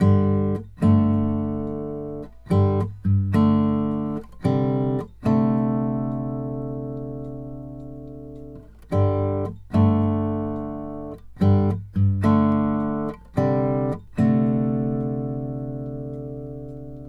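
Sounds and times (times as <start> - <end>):
country guitar playing: 0.0 - 17.0.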